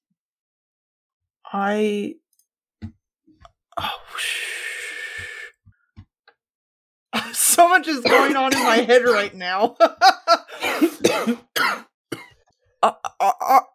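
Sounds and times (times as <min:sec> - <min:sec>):
speech: 0:01.5 - 0:02.2, 0:03.8 - 0:04.4, 0:07.5 - 0:12.2, 0:12.8 - 0:13.7
gasping breath: 0:03.8 - 0:05.6
person coughing: 0:08.0 - 0:09.4, 0:10.5 - 0:13.7
laughter: 0:09.6 - 0:10.6.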